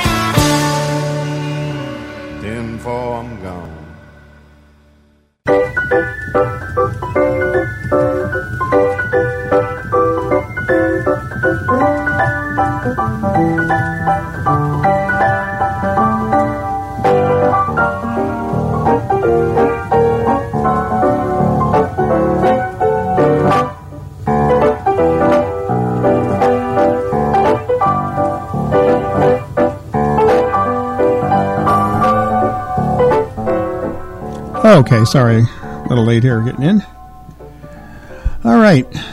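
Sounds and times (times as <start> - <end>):
country truck-driving song played by a full instrumental band: 0.0 - 4.4, 5.5 - 39.1
speech: 2.8 - 3.8, 34.9 - 37.0, 38.6 - 39.1.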